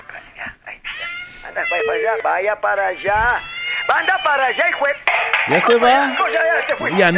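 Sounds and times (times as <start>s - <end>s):
cat meowing: 0.9s - 5.0s
speech: 1.4s - 7.1s.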